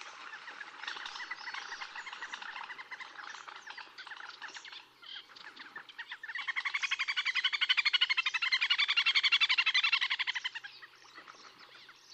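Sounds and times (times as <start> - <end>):
little grebe whinnying trill song: 0.1 - 11.0.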